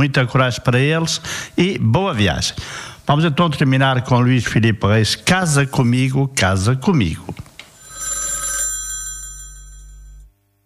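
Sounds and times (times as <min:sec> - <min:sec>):
speech: 0:00.0 - 0:07.5
loud telephone bell ring: 0:07.8 - 0:10.3.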